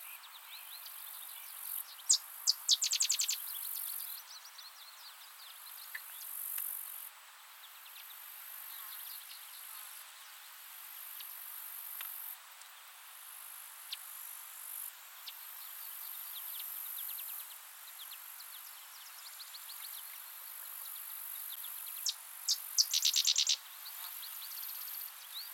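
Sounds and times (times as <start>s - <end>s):
insect-like hiss: 0.0s - 25.5s
Sedge wren Cistothorus stellaris singing dry rattling high-pitched notes: 2.0s - 3.4s, 22.0s - 23.6s.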